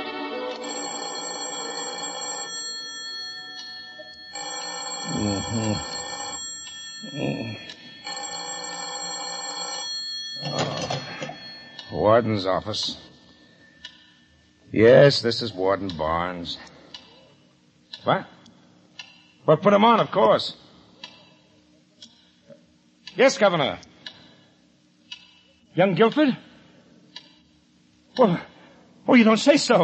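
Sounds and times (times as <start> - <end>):
old-fashioned telephone bell ringing: 0.6 - 13.5
speech: 12.1 - 13.1, 14.8 - 16.7, 18.0 - 18.3, 19.5 - 20.6, 23.2 - 23.9, 25.8 - 26.4, 28.2 - 28.5, 29.1 - 29.8.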